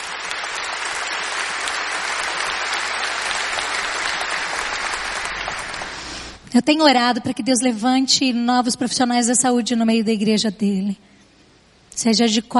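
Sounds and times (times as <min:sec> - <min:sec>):
audience applauding: 0:00.0 - 0:06.4
speech: 0:06.6 - 0:11.1, 0:12.0 - 0:12.5.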